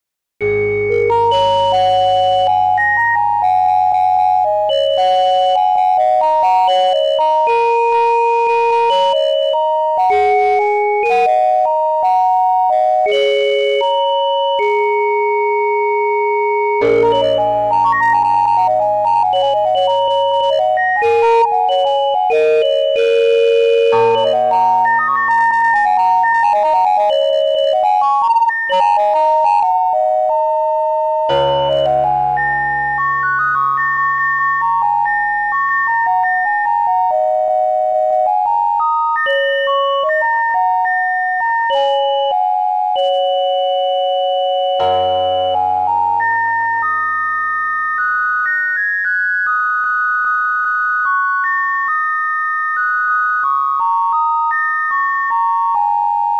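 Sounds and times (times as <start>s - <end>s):
bassoon: 0.4s - 40.3s, 44.8s - 47.4s
glockenspiel: 0.4s - 56.3s
piano: 0.4s - 56.3s.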